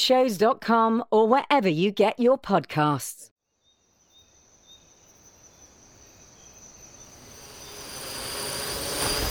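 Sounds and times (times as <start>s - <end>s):
speech: 0.0s - 3.3s
flying drones carrying a woman buzzing: 6.6s - 9.2s.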